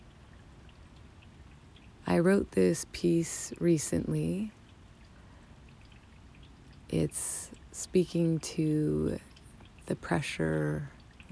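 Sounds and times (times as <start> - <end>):
scattered raindrops pattering: 0.0 - 11.3
steady outdoor rain hissing: 1.9 - 9.8
speech: 2.1 - 4.6, 6.9 - 9.3, 9.9 - 11.3.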